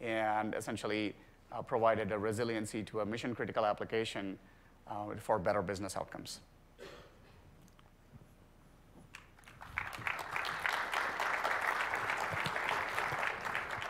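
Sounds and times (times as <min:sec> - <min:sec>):
speech: 0:00.0 - 0:07.0
audience applause: 0:09.2 - 0:13.8.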